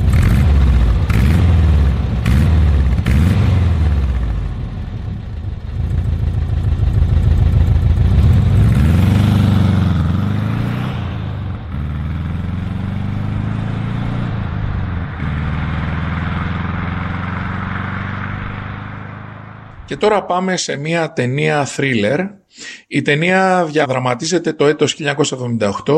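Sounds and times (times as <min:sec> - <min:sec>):
car engine running and revving: 0:00.0 - 0:19.9
speech: 0:19.9 - 0:25.9.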